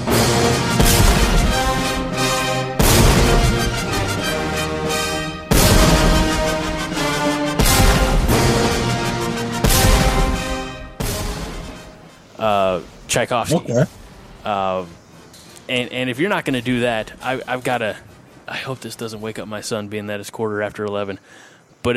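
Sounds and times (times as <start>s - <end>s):
full orchestral music with brass and strings: 0.0s - 11.9s
booming cannon blasts: 0.7s - 4.2s, 5.5s - 11.9s
speech: 13.2s - 15.0s, 15.7s - 21.9s.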